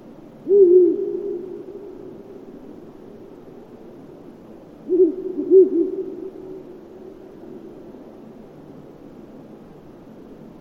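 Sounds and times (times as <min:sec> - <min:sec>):
Ural owl uttering low mellow hoots: 0:00.4 - 0:02.8, 0:04.8 - 0:06.9.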